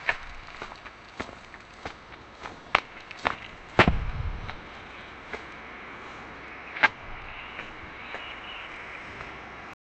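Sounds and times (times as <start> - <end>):
person walking: 0.0 - 5.5.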